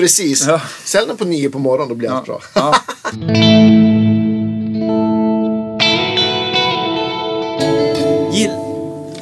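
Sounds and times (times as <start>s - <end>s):
speech: 0.0s - 4.0s
laughter: 2.4s - 3.2s
electric guitar chords through a chorus vibrato effects pedal: 3.2s - 9.1s.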